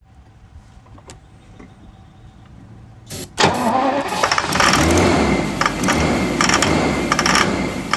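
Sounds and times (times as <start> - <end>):
1986 XJS V12 engine not cranking: 3.4 - 7.9.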